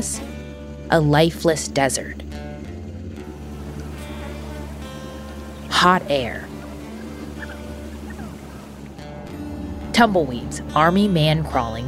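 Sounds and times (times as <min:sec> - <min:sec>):
speech: 0:00.0 - 0:00.3, 0:00.9 - 0:02.4, 0:05.8 - 0:06.5, 0:10.0 - 0:11.8
insects buzzing in a hot desert: 0:02.0 - 0:09.9.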